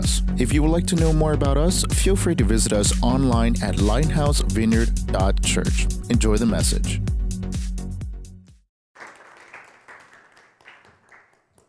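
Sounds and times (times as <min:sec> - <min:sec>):
speech: 0:00.0 - 0:07.2
audience applause: 0:09.0 - 0:11.6.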